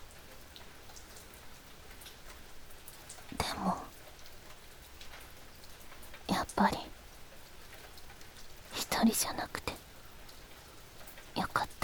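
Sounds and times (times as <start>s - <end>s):
rain pattering on a hard open surface by a poolside: 0.0s - 11.8s
speech: 6.6s - 6.8s, 9.1s - 9.6s.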